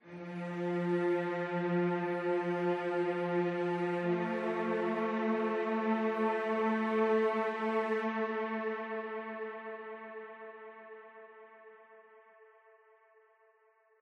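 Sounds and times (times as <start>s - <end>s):
cello music: 0.0s - 9.4s.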